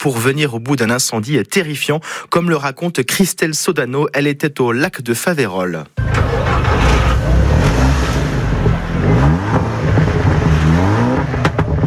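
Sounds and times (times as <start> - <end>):
speech: 0.0 - 7.0
loud roaring engines revving: 6.0 - 11.8.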